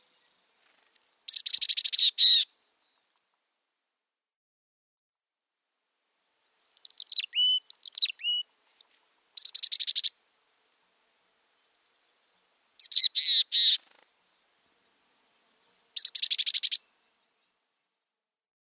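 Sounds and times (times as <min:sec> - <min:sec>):
mountain chickadee thin varied chips and twitters: 0:00.6 - 0:02.4, 0:06.7 - 0:10.1, 0:12.8 - 0:13.9, 0:16.0 - 0:16.8.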